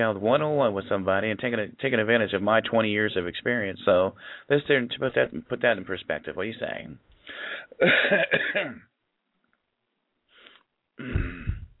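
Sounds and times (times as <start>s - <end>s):
speech: 0.0s - 8.9s
throat clearing: 7.8s - 8.9s, 11.0s - 11.7s.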